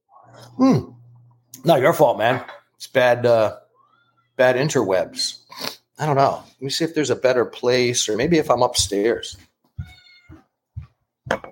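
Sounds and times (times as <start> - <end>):
speech: 0.4 - 1.0, 1.6 - 3.6, 4.4 - 9.9
cat meowing: 3.6 - 4.4, 9.8 - 10.5.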